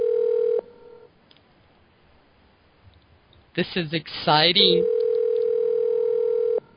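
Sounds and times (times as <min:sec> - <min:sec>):
electronic telephone ringing tone of an outgoing call: 0:00.0 - 0:01.1, 0:04.6 - 0:06.7
person speaking over the telephone line: 0:03.6 - 0:04.8
speech: 0:03.6 - 0:05.0.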